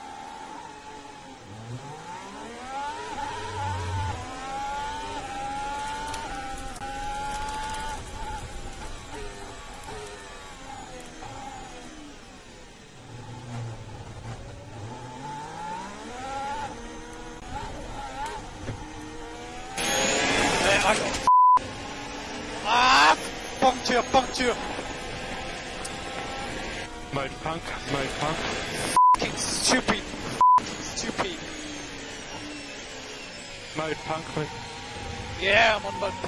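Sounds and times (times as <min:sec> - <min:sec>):
high-revving Formula One car engine on the first lap of a race, heard onboard: 0:00.0 - 0:36.2
radio voices speaking: 0:22.7 - 0:24.6, 0:27.2 - 0:31.5.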